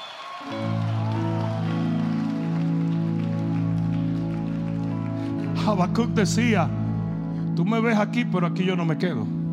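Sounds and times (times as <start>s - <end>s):
crowd roaring and cheering in victory: 0.0s - 5.4s
speech: 5.6s - 6.8s, 7.6s - 9.4s.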